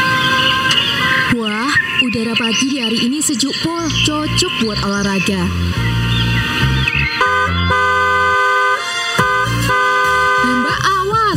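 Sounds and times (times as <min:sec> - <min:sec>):
car horn honking on a road: 0:00.0 - 0:01.4, 0:07.0 - 0:11.0
traffic noise: 0:00.0 - 0:11.3
speech: 0:02.3 - 0:06.0.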